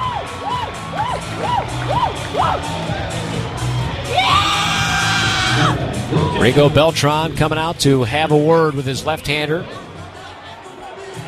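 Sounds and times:
crowd with whoops, yells and sustained shouting: 0.0s - 6.7s, 9.3s - 11.2s
large baseball crowd roaring and cheering in a big open space: 0.0s - 11.2s
speech: 6.4s - 9.8s.

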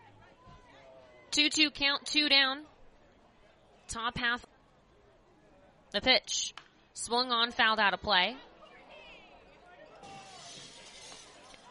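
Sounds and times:
speech: 1.3s - 2.7s, 3.9s - 4.5s, 5.9s - 8.5s
window glass shattering: 10.0s - 11.5s.

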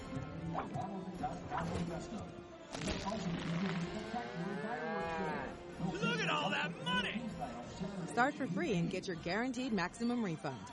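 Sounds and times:
speech: 0.2s - 5.0s, 5.8s - 10.7s
cow mooing: 4.1s - 5.6s.

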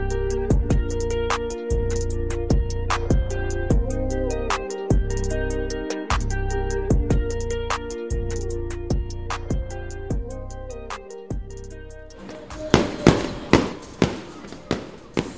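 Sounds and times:
steady rhythmic music with a low droning bass: 0.0s - 15.3s
fireworks booming and crackling outdoors over a ballpark: 12.2s - 15.3s.

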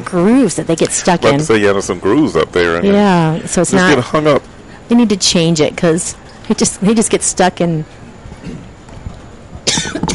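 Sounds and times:
speech: 0.1s - 8.6s
sharp loud coughs: 9.6s - 10.1s.

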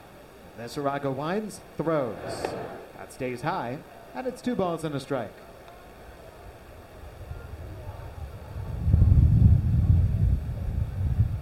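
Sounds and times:
speech: 0.6s - 5.5s
wind buffeting the microphone at a baseball game: 6.7s - 11.4s.

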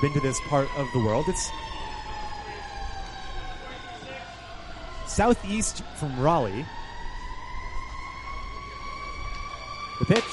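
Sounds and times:
speech: 0.0s - 1.8s, 5.2s - 6.8s, 10.0s - 10.3s
emergency sirens outside during a baseball game: 0.0s - 10.3s.

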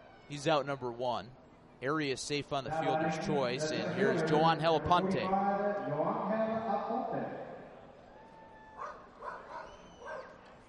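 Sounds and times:
speech: 0.3s - 6.4s
dogs barking in a ballpark crowd: 8.8s - 10.4s.

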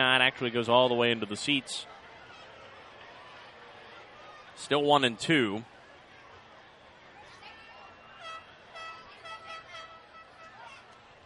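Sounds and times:
speech: 0.0s - 1.9s, 4.6s - 5.7s
stadium crowd roar and chatter: 0.0s - 11.2s
air horn short rhythmic blasts in a stadium: 8.2s - 10.6s.

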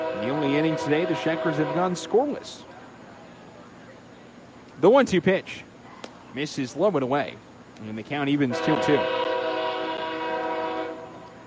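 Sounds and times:
loud sustained train horn blaring near ballpark: 0.0s - 2.6s, 8.5s - 11.3s
speech: 0.2s - 2.7s, 4.8s - 5.7s, 6.3s - 9.2s.

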